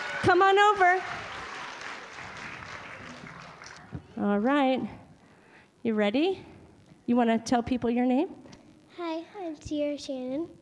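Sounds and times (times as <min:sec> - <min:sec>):
audience applause: 0:00.0 - 0:04.1
speech: 0:00.2 - 0:01.2, 0:04.2 - 0:05.0, 0:05.8 - 0:06.5, 0:07.1 - 0:08.4, 0:09.0 - 0:10.6.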